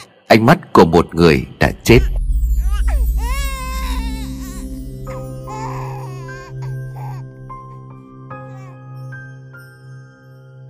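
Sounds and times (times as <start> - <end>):
speech: 0.3 - 2.2
infant crying in wavering wails: 2.6 - 8.8.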